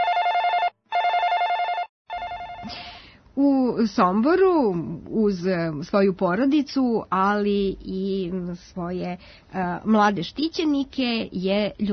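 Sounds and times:
telephone ringing in electronic bursts: 0.0 - 2.7
faint noise: 2.1 - 11.9
speech: 3.4 - 11.9.

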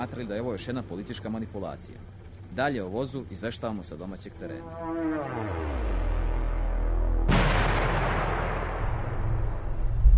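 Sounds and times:
speech: 0.0 - 6.0
explosion on the road to Belgrade: 5.2 - 10.1.

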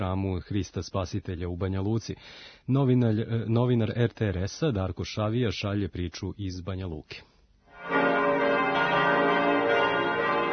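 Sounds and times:
speech: 0.0 - 8.0
Orthodox church bells ringing at midnight for Christmas: 7.8 - 10.5.

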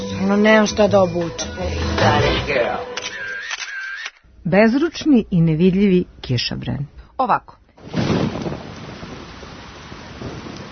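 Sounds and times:
speech: 0.3 - 2.9, 4.4 - 8.0
heavy rain shower: 7.8 - 10.7
thunder rumble: 7.8 - 10.7.

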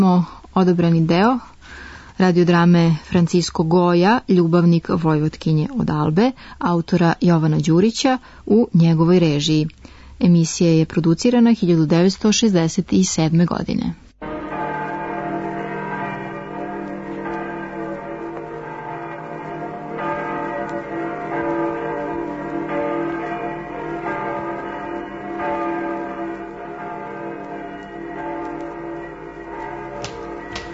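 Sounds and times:
speech: 0.0 - 14.0
church bells ringing in Spain: 14.2 - 30.7.

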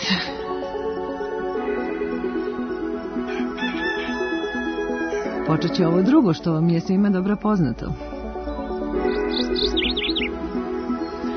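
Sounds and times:
steady tonal background: 0.0 - 11.3
speech: 0.1 - 0.4, 5.5 - 8.1
small birds chirping as the closing signal of a morning radio programme: 5.6 - 11.3.

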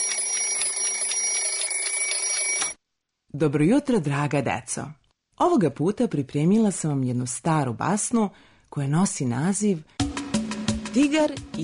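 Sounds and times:
children's alarm clock ringing with metallic rattle: 0.0 - 2.8
speech: 3.3 - 10.1, 10.9 - 11.6.

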